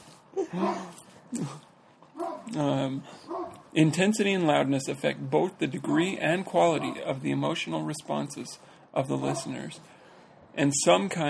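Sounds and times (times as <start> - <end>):
speech: 0.5 - 1.7, 2.5 - 10.0, 10.6 - 11.2
neighbor's dog barking outdoors: 0.6 - 0.9, 2.2 - 2.5, 3.3 - 3.6, 6.8 - 7.0, 9.2 - 9.6.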